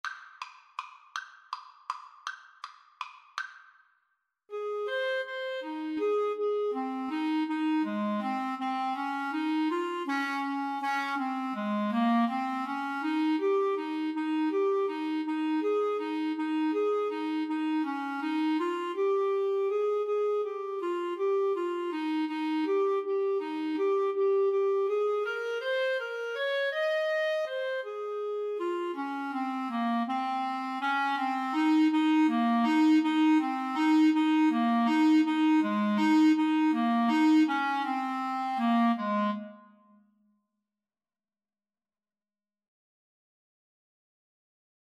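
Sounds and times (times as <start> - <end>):
clarinet duet: 4.5 - 40.0.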